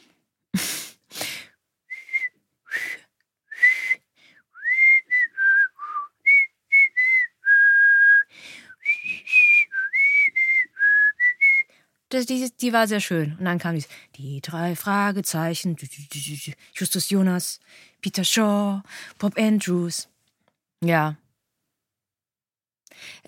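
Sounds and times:
person whistling a short bouncy jingle melody: 4.6 - 11.7
speech: 12.2 - 20.1, 20.8 - 21.2.

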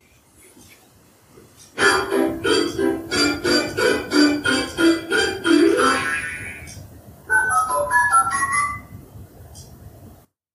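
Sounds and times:
electronic toy activity table playing a bouncy synthesized tune: 1.8 - 6.7, 7.3 - 8.9.

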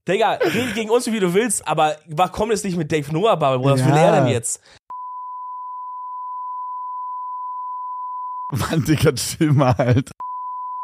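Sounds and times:
speech: 0.0 - 4.8, 8.5 - 10.2
censor bleep high-pitched tone: 4.9 - 8.5, 10.2 - 10.8.

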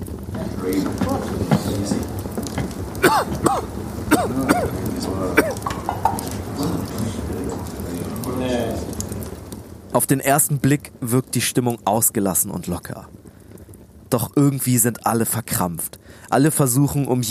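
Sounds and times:
steady crackling noisy background: 0.0 - 17.2
murmured voices: 0.3 - 9.2
speech: 0.6 - 2.2, 3.1 - 8.9, 9.9 - 13.2, 14.1 - 17.2
man coughing and clearing his throat: 3.0 - 4.8, 5.4 - 5.7.

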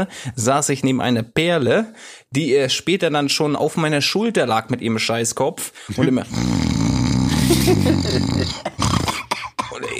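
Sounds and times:
speech: 0.0 - 8.9
voice imitating loud snoring: 6.0 - 9.9
laughter: 7.3 - 8.8.

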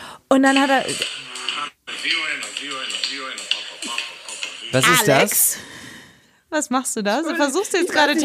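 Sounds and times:
speech: 0.3 - 1.2, 2.0 - 4.1, 4.7 - 5.8, 6.5 - 8.2
strange tinny music from a mobile phone set to silent: 0.6 - 5.6.

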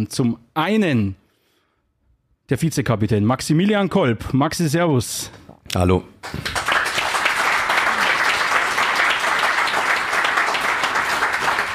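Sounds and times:
speech: 0.0 - 1.2, 2.5 - 6.6
audience clapping: 6.2 - 11.7.

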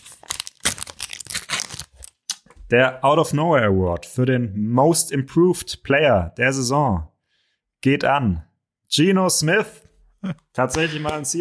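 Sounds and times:
paper ripping and crinkling: 0.0 - 2.4
envelope being torn open at an award announcement: 0.0 - 2.5
speech: 2.7 - 7.1, 7.8 - 11.4.

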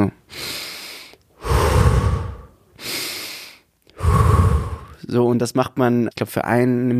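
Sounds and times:
rapid deep breathing near hyperventilation: 0.3 - 5.0
speech: 5.1 - 6.9.

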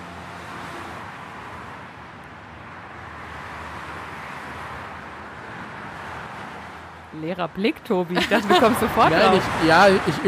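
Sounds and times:
cars rushing past on a motorway with tyre and engine noise: 0.0 - 10.2
speech: 7.1 - 10.2
laughter: 8.0 - 10.2.

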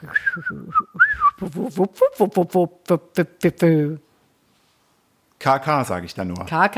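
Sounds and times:
person imitating a greater scaup drake's low whistling call: 0.0 - 2.6
person hooting vocal syllables imitating a greater scaup drake: 0.0 - 4.0
speech: 0.1 - 4.0, 5.4 - 6.7.

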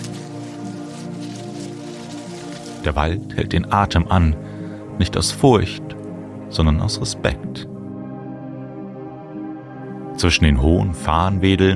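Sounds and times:
rustling in dense undergrowth: 0.0 - 3.3
speech: 2.8 - 7.7, 10.2 - 11.7.

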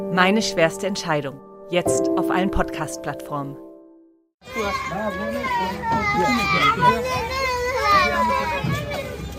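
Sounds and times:
speech: 0.2 - 3.7, 4.4 - 8.3
children from Afghanistan crying and restless: 4.5 - 9.3.

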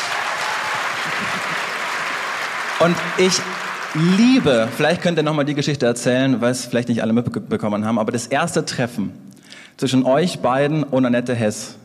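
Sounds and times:
audience applause at a German-language stage event: 0.0 - 5.4
speech: 2.8 - 11.8.

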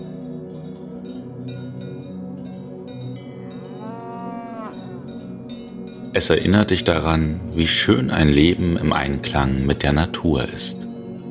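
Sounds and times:
cowbells clanking and jingling at Scharnitz in Tyrol, Austria: 0.6 - 6.7
cows mooing in the distance at Scharnitz in Tyrol, Austria: 3.2 - 5.3
speech: 6.2 - 10.8.

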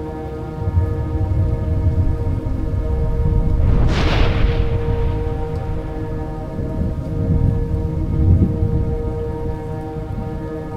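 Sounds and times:
heavy rain in a summer thunderstorm: 0.0 - 10.7
thunder rumbling in a summer thunderstorm: 0.0 - 10.7.

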